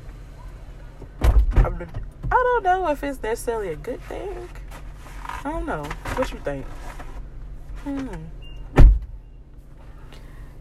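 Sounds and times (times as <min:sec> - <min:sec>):
low rumble of a moving car interior: 0:00.0 - 0:10.6
single solid thump: 0:01.2 - 0:02.4, 0:08.7 - 0:09.2
speech: 0:01.8 - 0:04.6, 0:05.4 - 0:07.0, 0:07.8 - 0:08.4.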